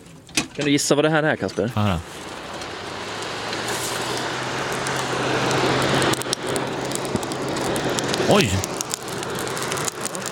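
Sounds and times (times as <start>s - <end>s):
speech: 0.6s - 2.3s, 8.3s - 8.7s
fire crackling and hissing in a portable field forge: 1.7s - 10.3s
person exclaiming: 8.3s - 8.7s.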